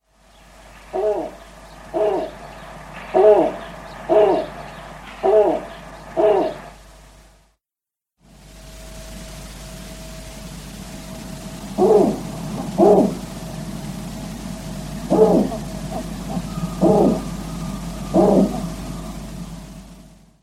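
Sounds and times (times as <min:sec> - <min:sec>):
male Snowy Owl territorial hoot in Sweden: 0:00.5 - 0:06.8, 0:11.6 - 0:20.2.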